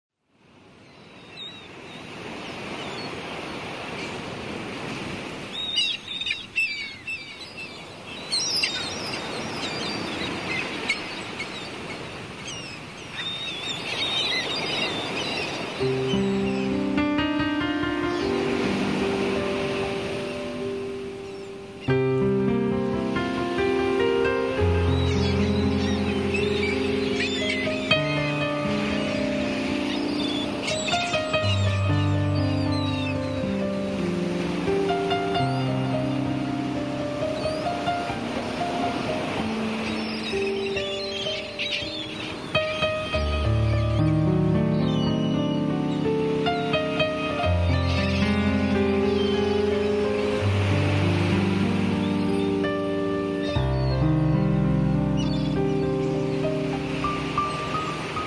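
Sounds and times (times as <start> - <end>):
nature sounds: 0.2 - 58.2
piano: 1.4 - 58.2.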